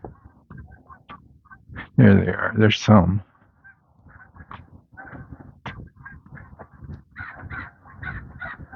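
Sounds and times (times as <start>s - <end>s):
speech: 2.0s - 3.3s
crow cawing: 7.1s - 8.7s.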